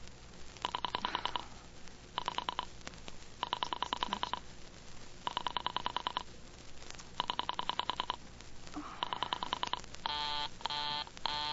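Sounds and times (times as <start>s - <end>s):
operator dialing a telephone number with buzzy tones: 0.6s - 1.4s, 2.2s - 2.7s, 3.4s - 4.4s, 5.3s - 6.2s, 7.2s - 8.2s, 9.0s - 11.5s.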